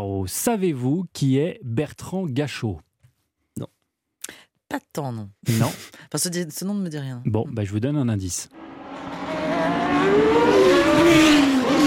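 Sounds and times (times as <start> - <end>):
speech: 0.2 - 2.9, 3.6 - 3.8, 4.7 - 9.3
Formula 1 race car engine high whine over a steady roar: 8.6 - 11.8.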